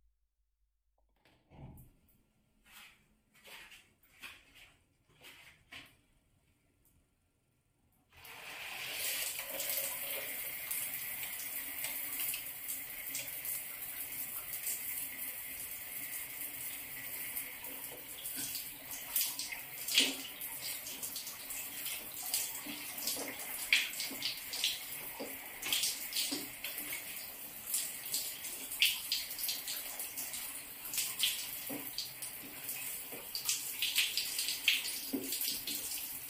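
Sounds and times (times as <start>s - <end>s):
water running for a shower: 8.1s - 36.2s.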